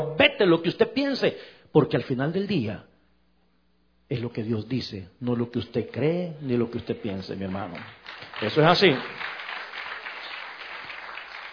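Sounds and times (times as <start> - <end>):
speech: 0.1 - 2.9, 4.1 - 9.2
hands clapping in applause: 6.8 - 11.5.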